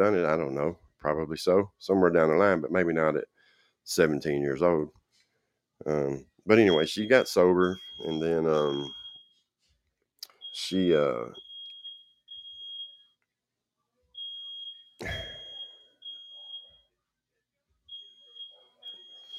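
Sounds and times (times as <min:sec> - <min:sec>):
speech: 0:00.0 - 0:05.0, 0:05.8 - 0:09.0, 0:10.6 - 0:11.4
smoke alarm beeping: 0:06.5 - 0:09.4, 0:10.3 - 0:13.2, 0:14.2 - 0:16.9, 0:17.9 - 0:19.3.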